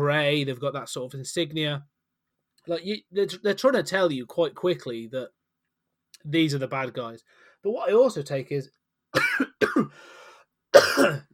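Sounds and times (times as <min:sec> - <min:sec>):
speech: 0:00.0 - 0:02.0, 0:02.6 - 0:05.4, 0:06.2 - 0:10.2, 0:10.8 - 0:11.3
person clearing their throat: 0:09.2 - 0:10.0, 0:10.8 - 0:11.3
person coughing: 0:09.2 - 0:10.0, 0:10.8 - 0:11.3.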